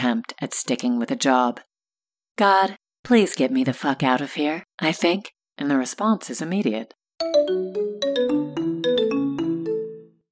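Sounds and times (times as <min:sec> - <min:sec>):
speech: 0:00.0 - 0:01.7, 0:02.4 - 0:07.8
classic ringtone from a worn mobile phone inside a purse: 0:07.2 - 0:10.2.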